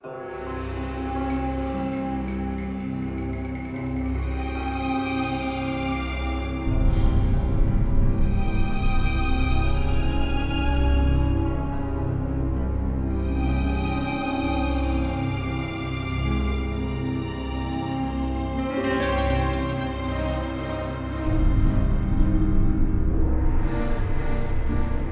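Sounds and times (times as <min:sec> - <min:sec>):
background music: 0:00.0 - 0:25.1.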